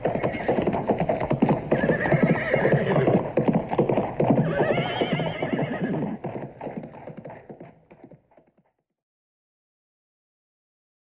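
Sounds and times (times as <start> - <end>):
horses whinnying loudly: 0.0 - 7.8
horses galloping: 0.0 - 8.7.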